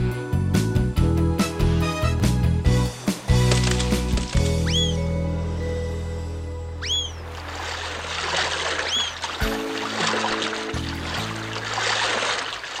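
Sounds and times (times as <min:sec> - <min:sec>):
soft musical backing: 0:00.0 - 0:08.3, 0:08.9 - 0:12.4
oars splashing and swirling through water while rowing a boat: 0:03.2 - 0:05.0, 0:06.8 - 0:12.7
bright rising chirps: 0:04.6 - 0:05.1, 0:06.8 - 0:07.2.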